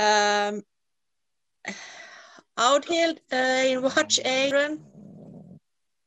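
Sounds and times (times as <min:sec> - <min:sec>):
speech: 0:00.0 - 0:00.7, 0:01.6 - 0:02.0, 0:02.6 - 0:05.0
dog snoring: 0:03.9 - 0:05.6.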